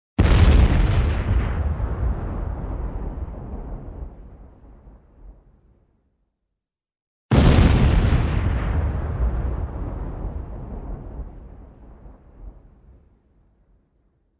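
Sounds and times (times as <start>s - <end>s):
bomb or shell explosions: 0.2s - 5.5s, 7.3s - 13.0s.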